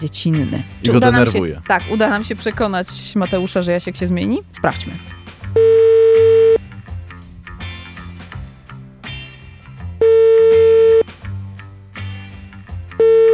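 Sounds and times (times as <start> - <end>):
speech: 0.0 - 5.3
soft music: 0.0 - 13.3
phone ringback tone of an unanswered outgoing call: 5.6 - 6.6, 10.0 - 11.0, 13.0 - 13.3.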